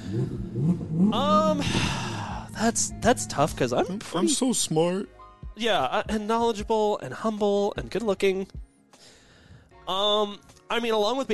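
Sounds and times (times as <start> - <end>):
voice imitating a revving car engine: 0.0 - 4.4
speech: 0.1 - 1.8, 2.6 - 8.6, 9.9 - 11.3.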